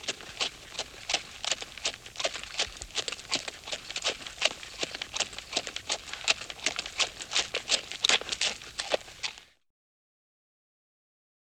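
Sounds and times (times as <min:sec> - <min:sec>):
horse hoofbeats at a medium pace: 0:00.0 - 0:09.4.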